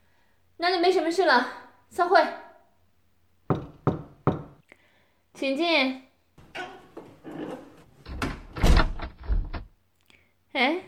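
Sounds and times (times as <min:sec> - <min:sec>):
speech: 0:00.6 - 0:02.4, 0:05.4 - 0:06.7, 0:10.6 - 0:10.8
office door being shut and locked after a meeting: 0:06.4 - 0:09.7.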